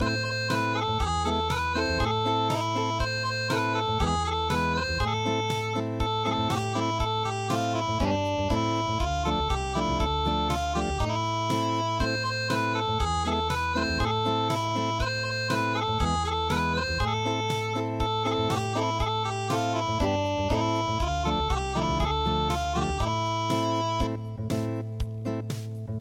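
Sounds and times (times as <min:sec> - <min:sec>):
unplugged traditional midi music: 0:00.0 - 0:25.9.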